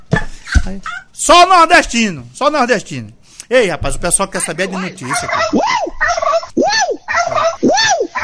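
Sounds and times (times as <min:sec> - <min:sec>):
turkey gobbling: 0:00.4 - 0:01.1, 0:04.4 - 0:08.2
speech: 0:00.6 - 0:06.2.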